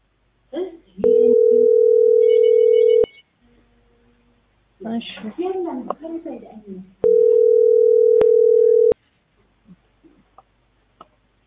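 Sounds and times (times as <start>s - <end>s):
people talking: 0.6s - 1.8s, 4.8s - 7.0s
ringback tone of an unanswered telephone call: 1.0s - 3.2s, 7.0s - 9.0s.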